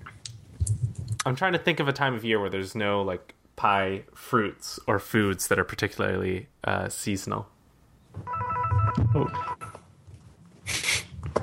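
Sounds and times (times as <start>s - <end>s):
speech: 1.2s - 7.5s, 9.2s - 9.5s
cell phone ringtone inside a jacket pocket: 8.3s - 9.7s.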